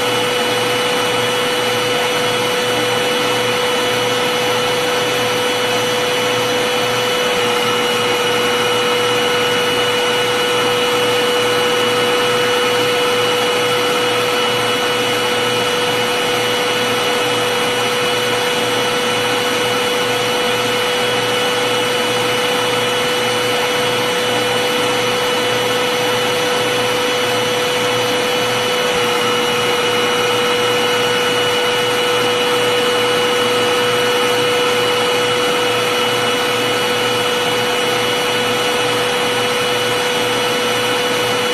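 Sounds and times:
vacuum cleaner running: 0.0s - 41.5s.

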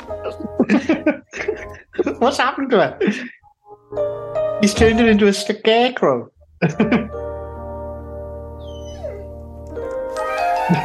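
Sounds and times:
speech: 0.3s - 1.4s, 2.2s - 3.4s, 4.6s - 7.2s
laughter: 0.4s - 2.2s, 6.6s - 7.2s, 10.5s - 10.8s
dogs whimpering and yipping: 8.6s - 9.4s.

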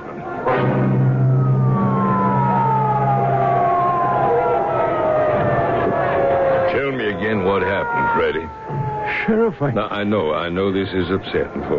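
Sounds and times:
dense traffic rumble: 0.0s - 11.7s
ambulance siren wailing: 0.5s - 11.7s
low engine drone: 0.5s - 11.7s
speech: 9.3s - 11.7s.

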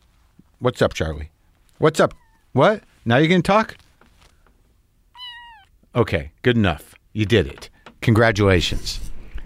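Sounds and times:
speech: 0.6s - 3.8s, 6.0s - 9.1s
cat meowing: 5.1s - 5.8s.

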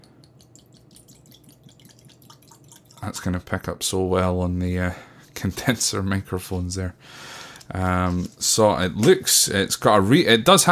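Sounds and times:
small bubbly splashes and drips of whisky: 0.0s - 3.3s
young whisky with added colouring pouring into a glass: 0.1s - 3.3s
speech: 3.0s - 10.7s.

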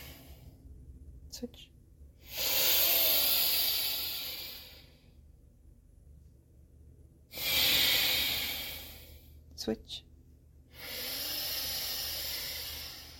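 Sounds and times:
breathing in and out through one nostril during alternate nostril breathing: 0.0s - 0.5s, 2.2s - 5.1s, 7.3s - 9.4s, 10.7s - 13.1s
speech: 1.4s - 2.5s, 9.6s - 10.1s.

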